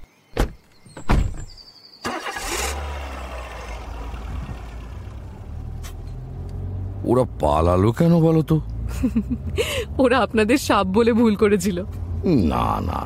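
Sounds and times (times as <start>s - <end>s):
car door thuds as people climb into a car to flee: 0.4s - 1.6s
car engine cranking into life and idling: 2.0s - 13.0s
speech: 7.1s - 13.0s.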